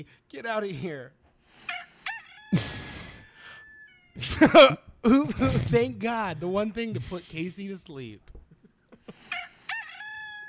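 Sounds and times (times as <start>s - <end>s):
speech: 0.0s - 1.8s, 2.5s - 2.9s, 4.2s - 8.4s
rooster crowing: 2.1s - 4.2s, 9.3s - 10.4s.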